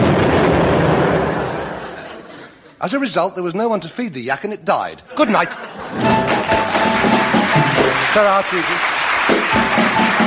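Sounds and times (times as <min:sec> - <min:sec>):
explosion sound effect: 0:00.0 - 0:02.1
speech: 0:02.8 - 0:07.0, 0:08.1 - 0:10.2.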